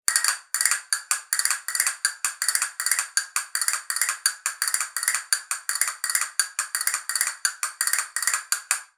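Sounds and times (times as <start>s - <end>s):
double-box glass castanets clacking: 0.1s - 8.8s.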